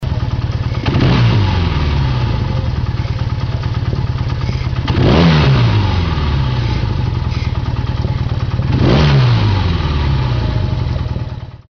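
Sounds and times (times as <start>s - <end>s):
Yamaha 750 TX motorcycle engine: 0.0s - 11.6s.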